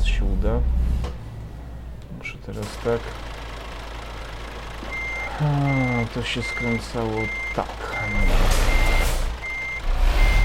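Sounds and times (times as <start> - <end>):
semi-truck with a trailer idling and rumbling while reversing: 0.0 - 10.4
speech: 2.5 - 3.3, 5.4 - 8.6
semi-truck backup alarm beeping: 4.8 - 10.4.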